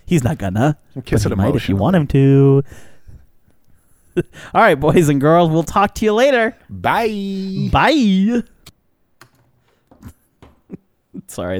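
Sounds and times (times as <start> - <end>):
quiet hiss: 0.0 - 11.5
speech: 0.1 - 2.9, 4.2 - 8.5, 11.2 - 11.5
computer keyboard keys being pressed: 9.2 - 10.6.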